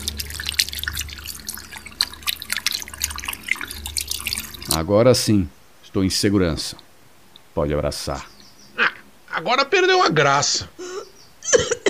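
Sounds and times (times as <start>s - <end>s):
running water from a tap while hands are washed: 0.0s - 5.3s
speech: 4.8s - 6.8s, 7.6s - 8.3s, 9.4s - 10.8s, 11.5s - 11.8s.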